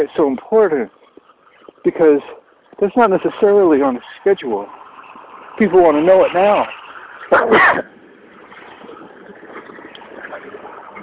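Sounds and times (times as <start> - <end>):
speech: 0.0 - 1.0, 1.8 - 4.8, 5.6 - 8.0
UPS truck riding by: 0.0 - 11.0
person sneezing onto a coat: 7.3 - 7.9.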